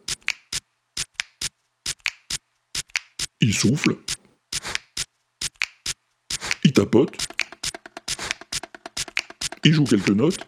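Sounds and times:
crisp finger snaps: 0:00.2 - 0:03.2, 0:05.6 - 0:06.7
speech: 0:03.4 - 0:04.1, 0:06.8 - 0:07.3, 0:09.6 - 0:10.4
bright squeaky accents like rubbed dishes: 0:06.4 - 0:10.4
short percussive scrapes: 0:07.2 - 0:10.2.

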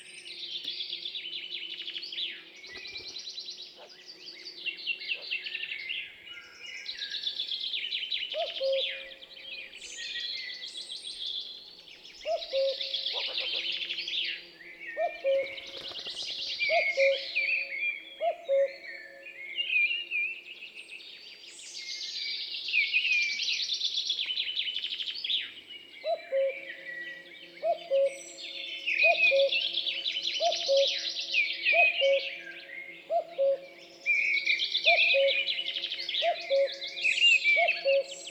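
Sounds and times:
dawn chorus of songbirds twittering: 0:00.0 - 0:38.2
cuckoo two-note call: 0:08.4 - 0:09.1, 0:12.3 - 0:13.7, 0:15.0 - 0:18.9, 0:26.0 - 0:38.2.

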